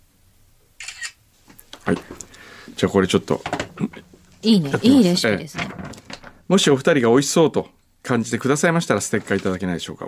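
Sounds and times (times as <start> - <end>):
camera shutter click in live camera mode: 0.8 - 1.2
speech: 1.9 - 5.8, 6.5 - 10.0.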